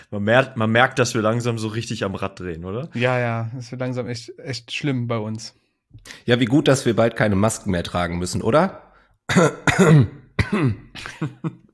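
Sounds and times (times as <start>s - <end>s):
speech: 0.1s - 11.6s
throaty voiced coughs: 9.3s - 11.5s.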